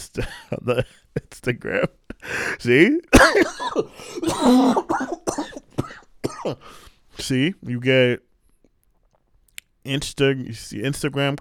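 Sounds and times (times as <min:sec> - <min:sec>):
speech: 0:00.0 - 0:05.5, 0:07.2 - 0:08.3, 0:09.8 - 0:11.3
coughing fit with harsh raspy coughs: 0:02.1 - 0:06.9
person clearing throat: 0:03.1 - 0:06.6.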